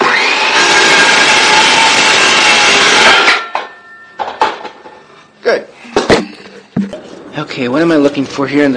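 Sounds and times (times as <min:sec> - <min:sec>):
saw cutting through a clamped wooden board: 0:00.0 - 0:03.3
speech: 0:05.5 - 0:05.7, 0:07.4 - 0:08.7
knocks: 0:06.0 - 0:07.0.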